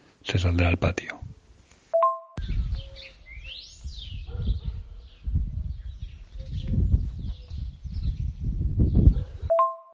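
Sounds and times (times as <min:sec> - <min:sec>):
speech: 0:00.3 - 0:01.2
small birds chirping: 0:02.4 - 0:09.9.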